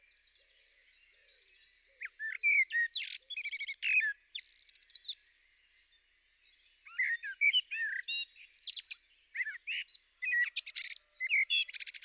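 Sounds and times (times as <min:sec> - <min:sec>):
common blackbird singing low fluted warbled phrases with high twitters: 0:01.6 - 0:05.2, 0:06.9 - 0:12.0.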